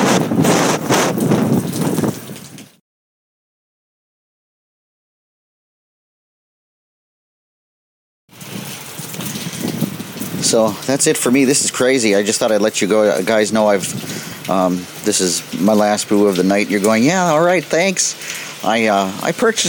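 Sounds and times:
heavy pouring storm rain: 0:00.0 - 0:02.8, 0:08.3 - 0:19.6
loud roaring storm wind buffeting the microphone: 0:00.0 - 0:02.8, 0:08.3 - 0:15.6
speech: 0:10.5 - 0:19.6.

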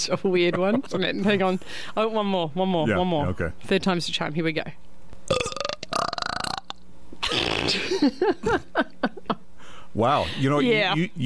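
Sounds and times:
speech: 0:00.0 - 0:05.6, 0:07.7 - 0:09.2, 0:10.0 - 0:11.2
loud drawn-out burp: 0:05.3 - 0:08.0
breathy rush of air: 0:09.6 - 0:10.4.

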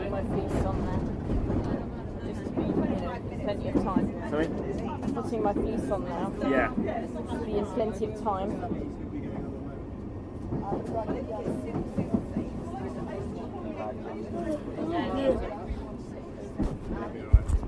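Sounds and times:
London Underground Piccadilly line train rumbling: 0:00.0 - 0:17.6
several people chattering: 0:00.0 - 0:17.6
speech: 0:00.2 - 0:01.7, 0:02.6 - 0:09.2, 0:10.6 - 0:12.2, 0:14.2 - 0:15.6.

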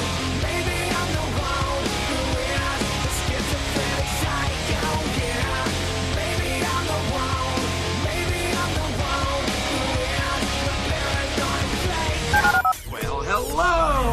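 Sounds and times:
dense busy musical bed: 0:00.0 - 0:13.2
touch-tone telephone keypad beeps: 0:12.3 - 0:12.8.

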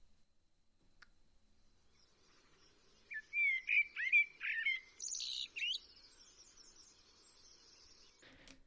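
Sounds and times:
Eurasian blackbird singing: 0:01.6 - 0:08.2.

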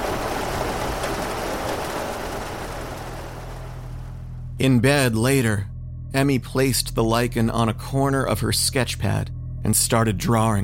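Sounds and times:
heavy rain falling: 0:00.0 - 0:04.4
speech: 0:04.6 - 0:10.6.

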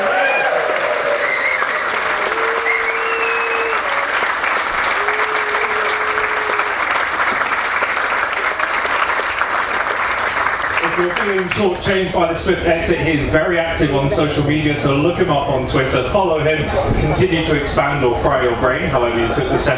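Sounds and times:
festival audience whoops and cheers: 0:00.0 - 0:07.0
large festival audience applause: 0:00.0 - 0:12.4
speech: 0:11.3 - 0:19.7.

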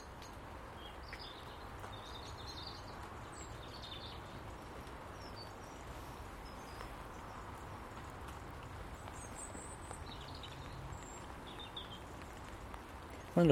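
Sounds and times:
blackbird singing dawn chorus in a garden: 0:00.0 - 0:07.4, 0:09.0 - 0:12.2
noisy outdoor background: 0:00.0 - 0:13.5
speech: 0:13.4 - 0:13.5.

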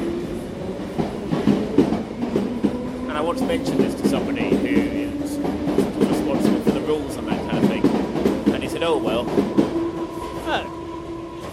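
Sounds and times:
underground train rumbling along the rails: 0:00.0 - 0:11.5
speech: 0:03.2 - 0:04.6.

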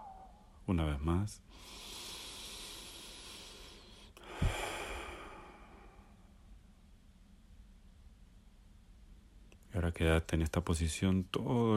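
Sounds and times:
speech: 0:00.7 - 0:01.9, 0:09.8 - 0:11.7
deep inhale and long slow exhale through the mouth: 0:01.5 - 0:06.2.

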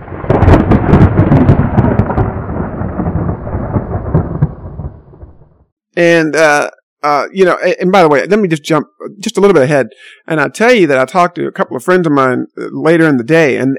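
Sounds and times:
loud thunder rumbling and crackling: 0:00.0 - 0:05.7
speech: 0:06.0 - 0:13.7.

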